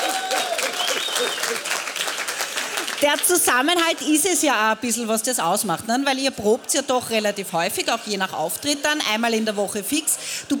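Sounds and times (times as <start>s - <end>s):
audience applauding a local music group: 0.0s - 3.6s
speech: 3.0s - 10.5s.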